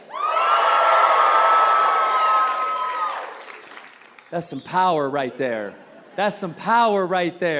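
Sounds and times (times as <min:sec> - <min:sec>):
large church audience cheering and applauding: 0:00.0 - 0:04.3
speech: 0:04.3 - 0:07.5.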